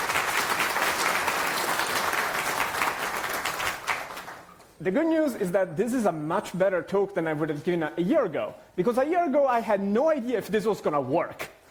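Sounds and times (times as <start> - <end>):
dense audience applause: 0.0 - 4.5
speech: 4.8 - 11.4.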